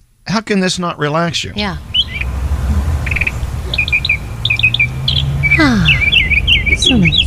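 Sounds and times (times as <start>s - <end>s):
speech: 0.4s - 1.9s, 5.6s - 6.0s, 6.7s - 7.2s
recorded birds chirping: 1.0s - 7.2s
descending whistle: 1.9s - 7.2s.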